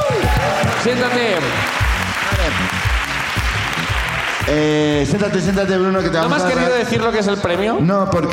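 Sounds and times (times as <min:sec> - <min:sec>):
voices and cheers: 0:00.0 - 0:04.6
audience applause for a winner: 0:00.0 - 0:05.1
speech: 0:00.8 - 0:02.8, 0:04.5 - 0:08.3.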